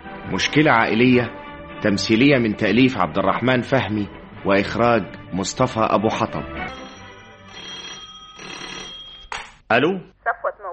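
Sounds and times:
speech: 0:00.3 - 0:06.7, 0:09.7 - 0:10.1
telephone bell ringing: 0:06.7 - 0:09.4.

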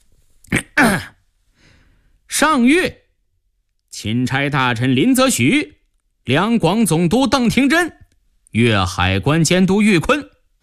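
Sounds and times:
person clearing throat: 0:00.5 - 0:01.2
speech: 0:02.4 - 0:03.0, 0:04.0 - 0:10.3.

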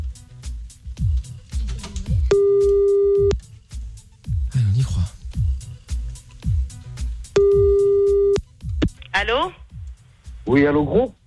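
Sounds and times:
low sounds: 0:00.7 - 0:11.2
telephone ringback tone on a call to Canada: 0:02.3 - 0:03.3, 0:07.4 - 0:08.4
speech: 0:09.2 - 0:09.6, 0:10.5 - 0:11.2.

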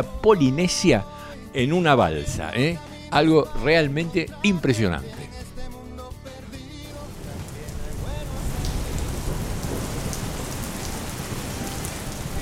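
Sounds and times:
speech: 0:00.0 - 0:05.4
music: 0:00.0 - 0:12.3
rain pouring down: 0:06.8 - 0:12.3
thunder rumbling: 0:07.0 - 0:12.3.

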